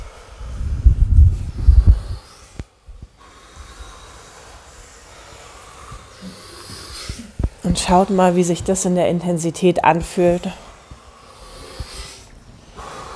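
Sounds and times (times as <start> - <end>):
deep forceful breath through the mouth: 0.0 - 7.7, 10.6 - 13.1
speech: 7.6 - 10.6.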